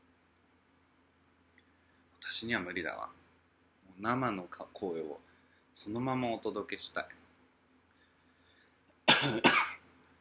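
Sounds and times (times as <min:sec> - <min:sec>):
speech: 0:02.4 - 0:03.2, 0:04.0 - 0:07.2, 0:09.2 - 0:09.6
person coughing: 0:09.1 - 0:09.8.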